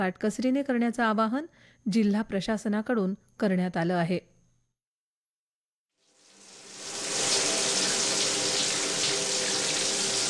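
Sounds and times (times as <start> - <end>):
speech: 0.0 - 4.3
water rushing from an overflowing tank: 6.2 - 10.2.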